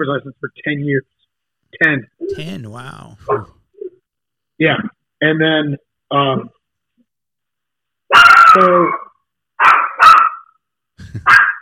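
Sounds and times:
speech: 0:00.0 - 0:03.6, 0:04.6 - 0:06.6, 0:08.1 - 0:09.0, 0:11.1 - 0:11.5
dog barking: 0:08.1 - 0:09.0, 0:09.6 - 0:10.5, 0:11.2 - 0:11.6.

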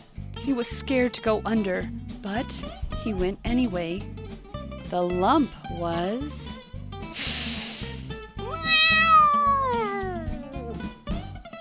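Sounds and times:
speech: 0:00.5 - 0:04.2, 0:04.9 - 0:06.6
cat meowing: 0:08.4 - 0:11.0.

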